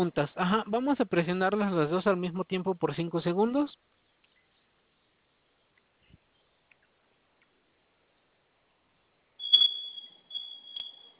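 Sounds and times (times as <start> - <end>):
speech: 0.0 - 4.0
high-pitched electronic alarm tone from a home security panel: 9.4 - 11.1.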